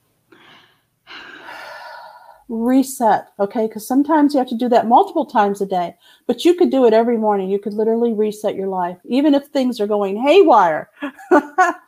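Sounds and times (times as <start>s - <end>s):
person taking a deep breath: 0.3s - 2.5s
speech: 2.5s - 11.8s.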